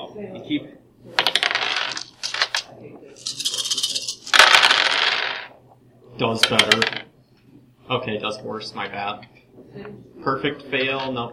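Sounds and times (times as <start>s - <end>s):
speech: 0.2s - 1.2s, 6.2s - 7.1s, 7.9s - 11.3s
dice rolling on a hard tabletop: 1.2s - 5.6s, 6.4s - 7.1s.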